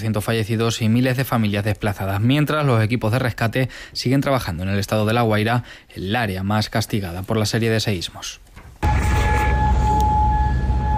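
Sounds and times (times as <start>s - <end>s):
speech: 0.0s - 8.5s
air raid siren with a steady sustained tone: 8.8s - 10.9s
heavy low rumble: 8.8s - 10.9s.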